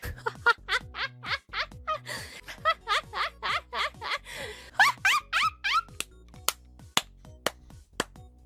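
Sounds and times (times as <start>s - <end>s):
person laughing tauntingly: 0.0s - 6.0s.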